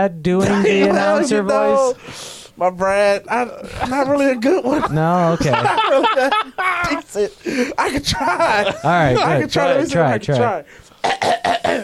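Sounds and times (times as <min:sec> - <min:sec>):
speech: 0:00.0 - 0:11.8
laughter: 0:00.4 - 0:02.0, 0:03.4 - 0:10.6
person clearing throat into the microphone: 0:11.0 - 0:11.8.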